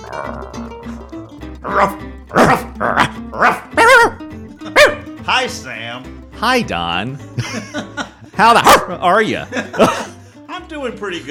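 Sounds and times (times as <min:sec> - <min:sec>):
speech: 0:00.1 - 0:01.0, 0:01.6 - 0:03.6, 0:05.4 - 0:10.0, 0:10.8 - 0:11.3
dog barking: 0:01.7 - 0:05.1, 0:08.6 - 0:09.0
laughter: 0:07.4 - 0:08.3, 0:09.4 - 0:10.3.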